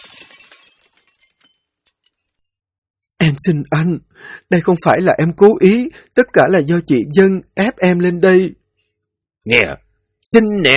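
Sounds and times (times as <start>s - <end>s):
kettle thrown against a wall and shattering: 0.0s - 2.4s
tinkling fragments of a shattered kettle: 0.0s - 2.5s
speech: 3.2s - 8.6s, 9.4s - 10.7s.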